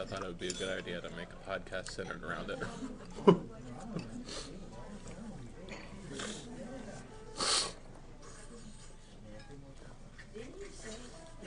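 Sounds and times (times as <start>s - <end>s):
speech: 0.0s - 4.6s
people murmuring: 2.0s - 11.4s
laughter: 2.6s - 3.5s
quick nasal sniffs: 4.2s - 4.6s, 7.4s - 8.9s.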